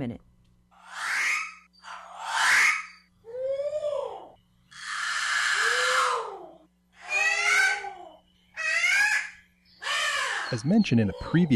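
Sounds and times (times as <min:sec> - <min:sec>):
speech: 0:00.0 - 0:00.3, 0:10.5 - 0:11.5
alala Hawaiian crow calling with raspy caws: 0:00.8 - 0:03.0, 0:04.7 - 0:10.6.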